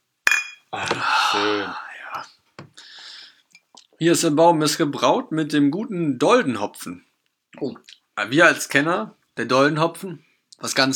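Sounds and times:
beer glasses clinking in a toast: 0.3 - 0.7
breathy whispery voices: 0.8 - 2.4
speech: 1.0 - 2.3, 4.0 - 10.9.

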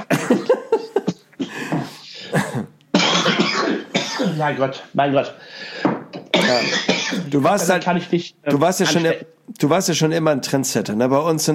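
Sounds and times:
person coughing into a microphone: 0.0 - 4.5, 6.3 - 7.8
speech: 4.4 - 5.9, 6.5 - 11.5.

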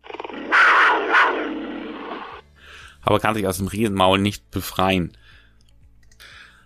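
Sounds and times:
small frightened lion screaming: 0.0 - 2.4
speech: 3.0 - 5.3.

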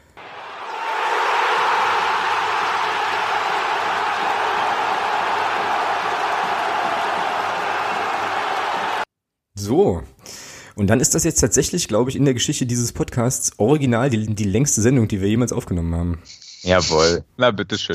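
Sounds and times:
large crowd roaring and cheering sound effect: 0.0 - 9.1
speech: 9.6 - 10.1, 10.8 - 17.9.

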